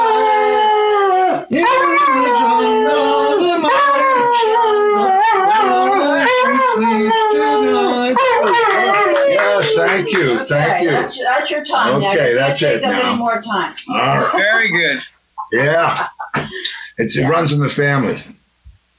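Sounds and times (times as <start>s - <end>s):
Australian Shepherd and poodle cross dog howling and yipping: 0.0s - 10.9s
laughter: 5.6s - 11.1s, 13.9s - 17.4s
speech: 10.0s - 18.4s.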